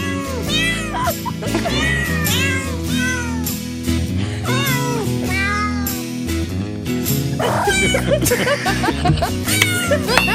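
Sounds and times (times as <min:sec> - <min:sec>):
cat meows pitched into a Christmas carol melody: 0:00.0 - 0:01.0, 0:01.7 - 0:03.5, 0:04.5 - 0:06.1, 0:07.5 - 0:08.0, 0:09.5 - 0:10.3
musical backing track: 0:00.0 - 0:10.3
laughter: 0:00.8 - 0:02.1, 0:07.4 - 0:10.3.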